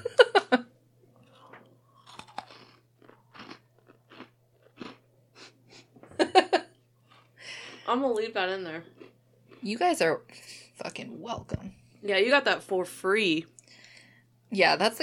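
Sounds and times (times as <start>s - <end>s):
crunchy sugar cookies chewed against a microphone: 1.1s - 5.9s, 6.7s - 10.0s
speech: 7.9s - 9.0s, 9.6s - 13.6s, 14.5s - 15.0s.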